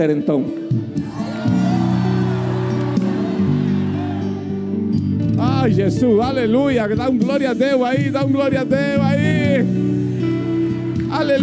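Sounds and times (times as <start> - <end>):
speech: 0.0 - 1.3, 5.6 - 10.0, 11.2 - 11.4
audience shouting and cheering: 0.9 - 5.5
people whooping: 1.0 - 4.9.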